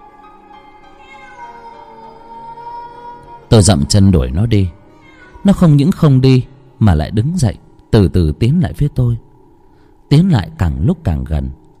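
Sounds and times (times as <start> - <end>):
cat meowing while sitting outside a house: 0.8 - 3.1, 4.9 - 5.8
speech: 3.5 - 4.8, 5.4 - 9.3, 10.1 - 11.6.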